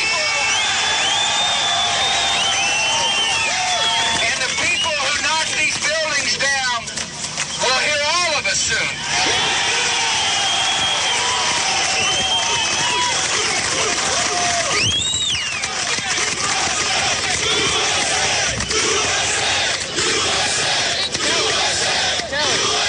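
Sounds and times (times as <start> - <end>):
shrill whistle: 0.0 - 5.1, 10.0 - 13.8, 14.6 - 15.7
large crowd cheering and chanting at a political rally: 0.0 - 6.6, 7.6 - 22.8.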